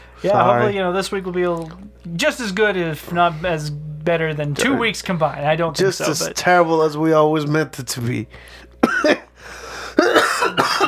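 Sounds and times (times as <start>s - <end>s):
speech: 0.2s - 9.2s
person clearing throat: 8.8s - 10.8s
person coughing: 8.8s - 10.8s.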